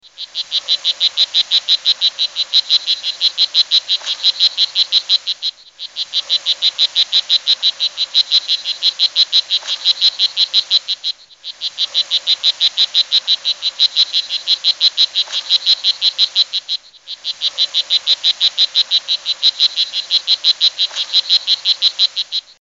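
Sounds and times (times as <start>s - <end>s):
red poison dart frog calling: 0.0s - 22.6s.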